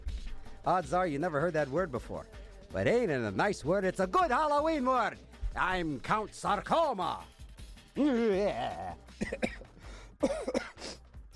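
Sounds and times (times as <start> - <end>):
speech: 0.6 - 7.3, 8.0 - 9.5, 10.2 - 10.7
throat clearing while coughing up phlegm: 8.0 - 11.0.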